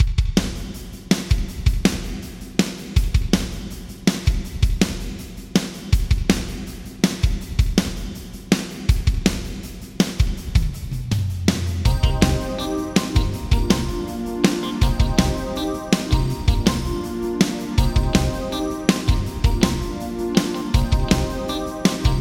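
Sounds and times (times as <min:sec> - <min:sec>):
Yamaha ProR3 drums in a large hall: 0:00.0 - 0:22.1.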